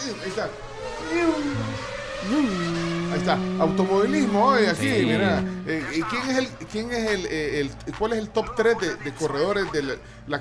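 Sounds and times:
speech: 0:00.1 - 0:10.3
voice imitating a racing car engine: 0:01.2 - 0:06.1.

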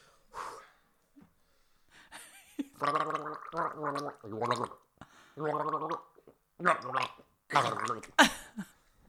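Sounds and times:
man gargling water while humming a song tune: 0:02.8 - 0:04.8, 0:05.4 - 0:08.2.

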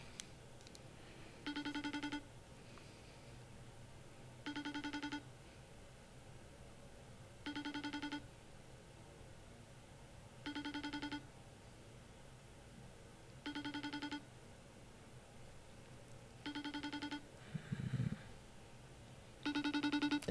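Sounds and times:
phone call ringing with warbling electronic tone: 0:01.4 - 0:02.2, 0:04.5 - 0:05.2, 0:07.4 - 0:08.2, 0:10.5 - 0:11.2, 0:13.4 - 0:14.2, 0:16.4 - 0:17.3, 0:19.4 - 0:20.2.

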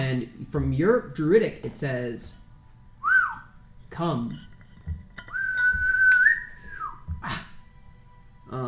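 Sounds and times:
speech: 0:00.1 - 0:02.4, 0:04.0 - 0:04.5, 0:07.2 - 0:07.4
whistling: 0:03.0 - 0:03.6, 0:05.2 - 0:07.1.

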